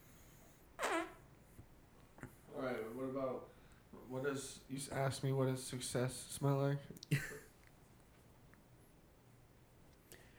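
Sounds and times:
armpit fart: 0.8 - 1.4
speech: 4.1 - 7.4.

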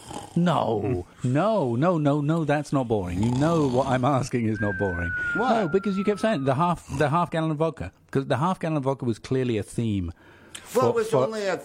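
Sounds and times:
person vocally imitating a snore: 0.0 - 1.1, 3.2 - 4.0
speech: 0.4 - 11.6.

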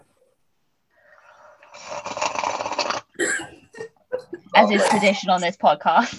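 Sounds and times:
loud slurp of tea: 1.0 - 3.2
speech: 4.6 - 6.1.

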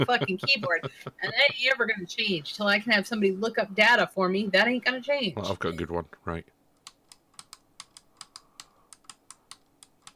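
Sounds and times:
laughter: 0.0 - 1.8
speech: 0.0 - 6.6
clicky computer mouse wheel being scrolled: 6.8 - 10.1.

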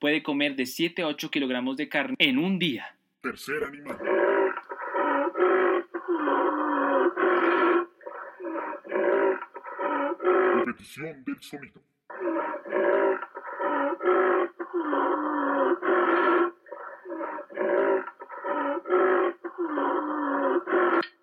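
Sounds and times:
speech: 0.0 - 4.3, 10.7 - 11.9
rhinoceros grunting and bellowing: 3.9 - 10.7, 12.1 - 21.0.

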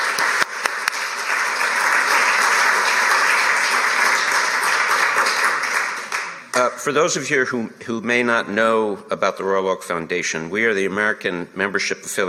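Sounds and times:
crowd applauding at the Athenaeum: 0.0 - 6.7
speech: 6.6 - 12.2.

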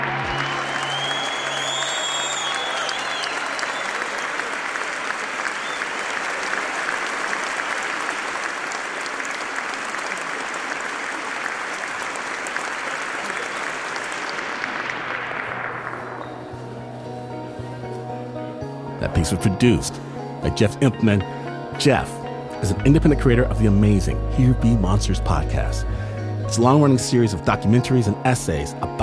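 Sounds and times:
large audience applauding: 0.0 - 17.2
speech: 19.2 - 29.0.

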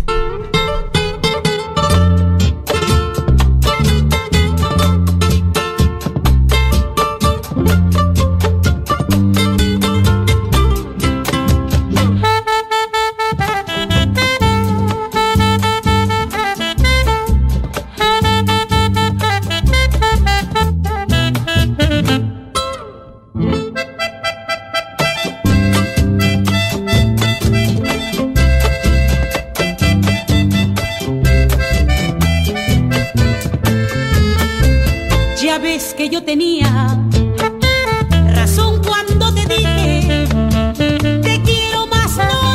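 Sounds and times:
strummed accompaniment: 0.0 - 42.5
Peruvian criollo song with female singer: 35.4 - 37.0, 38.3 - 40.2, 41.3 - 42.5.

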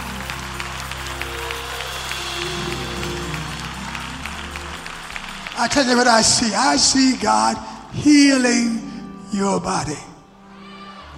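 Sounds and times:
audience clapping in praise to God: 0.0 - 8.7
low droning musical tone: 0.0 - 11.1
speech: 5.6 - 10.1.

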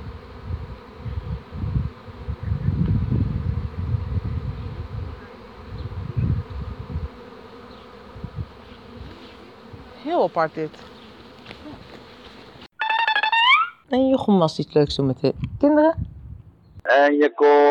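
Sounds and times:
dense swarm of bees buzzing: 0.0 - 12.7
speech: 10.1 - 11.0, 13.9 - 16.1, 16.9 - 17.6.

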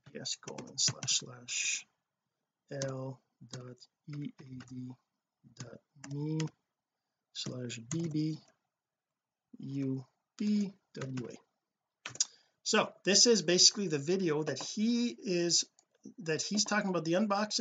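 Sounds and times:
speech: 0.2 - 1.9, 2.7 - 6.6, 7.4 - 8.5, 9.5 - 11.5, 12.1 - 17.5
computer keyboard typing a web address: 0.4 - 1.2, 2.7 - 4.9, 5.6 - 6.5, 7.4 - 8.2, 10.4 - 11.4, 12.0 - 12.3.

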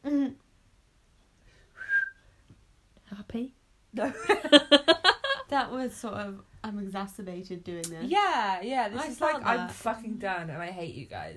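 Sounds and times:
person whistling a brief breathy note: 1.8 - 2.3
speech: 3.3 - 4.8, 5.6 - 11.3.

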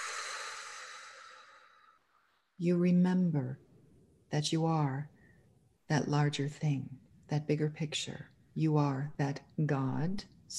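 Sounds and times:
long slow exhale during meditation: 0.0 - 2.2
speech: 2.6 - 3.7, 4.3 - 5.2, 5.9 - 10.5.

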